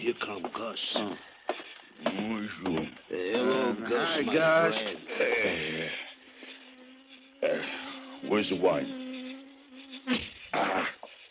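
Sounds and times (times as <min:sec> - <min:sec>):
speech: 0:00.6 - 0:01.3, 0:02.0 - 0:06.0, 0:07.6 - 0:09.0
thin steady buzz: 0:03.1 - 0:11.3.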